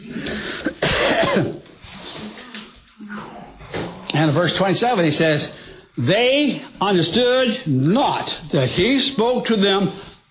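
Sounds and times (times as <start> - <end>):
coughing: 0.4 - 1.7
throat clearing: 0.5 - 1.7
speech: 4.3 - 10.1.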